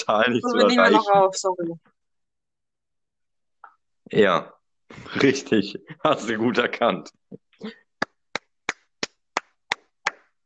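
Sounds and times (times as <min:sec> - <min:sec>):
speech: 0:00.0 - 0:02.0, 0:04.1 - 0:07.8
laughter: 0:04.9 - 0:06.6
single pair of hands clapping: 0:07.8 - 0:10.4.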